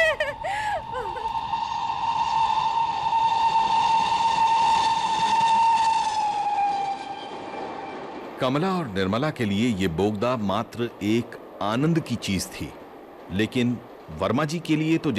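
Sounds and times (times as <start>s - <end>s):
steam-style train whistle as train enters a tunnel: 0.8s - 8.3s
speech: 8.4s - 15.1s.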